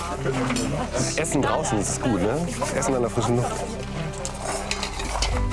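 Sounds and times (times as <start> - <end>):
speech: 0.2 - 4.2
spoon stirring lentil bolognese in a pot outdoors: 4.2 - 5.4.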